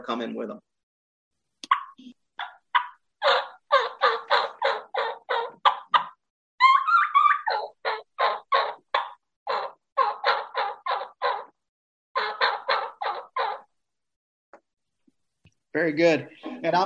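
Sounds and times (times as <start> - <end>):
speech: 0.0 - 0.7, 2.0 - 2.2, 15.8 - 16.8
turkey call for spring hunting running a kee-kee run: 1.7 - 11.6, 12.2 - 13.8.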